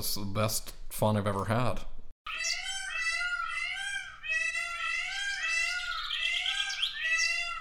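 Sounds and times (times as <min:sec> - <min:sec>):
speech: 0:00.0 - 0:02.4
peacock wailing calls: 0:02.3 - 0:07.5.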